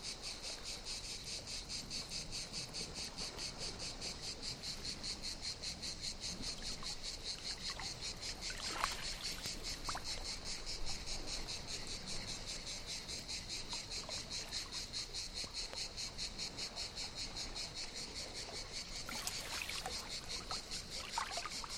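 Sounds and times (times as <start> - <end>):
cicadas buzzing chorus in the morning at a Mediterranean calanque beach: 0.0 - 21.7
water on a fine gravel beach shore: 0.0 - 21.7
water splash: 8.5 - 10.0, 19.0 - 21.7.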